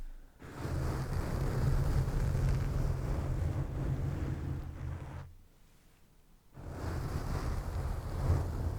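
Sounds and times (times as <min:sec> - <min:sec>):
softer hissing foam texture: 0:00.4 - 0:05.3, 0:06.6 - 0:08.7
rough brushing and scratching against a microphone: 0:00.4 - 0:08.7
heavy low rumble: 0:00.5 - 0:05.3.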